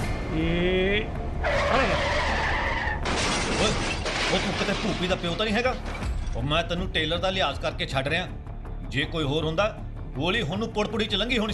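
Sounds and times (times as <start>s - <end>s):
speech: 0.4s - 1.2s, 4.3s - 11.5s
car skidding to a stop with tire squeal: 1.4s - 3.4s.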